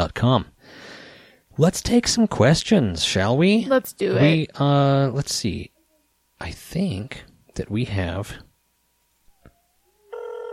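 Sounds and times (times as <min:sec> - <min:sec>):
speech: 0:00.0 - 0:00.9, 0:01.6 - 0:05.7, 0:06.4 - 0:08.5
quiet hum: 0:00.0 - 0:10.5
telephone with bright buzzing electronic ring: 0:10.2 - 0:10.5.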